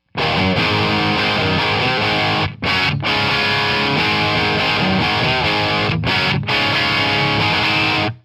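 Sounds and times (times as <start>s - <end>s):
Ace Tone 2x12 Celestion amplifier tone: 0.1s - 8.2s.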